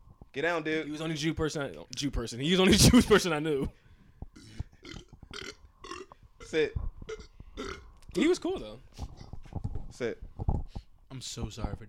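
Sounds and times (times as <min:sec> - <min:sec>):
speech: 0:00.4 - 0:03.8, 0:06.5 - 0:07.3, 0:08.2 - 0:09.0, 0:10.0 - 0:10.3, 0:11.1 - 0:11.8
long gravelly burp: 0:04.4 - 0:07.9.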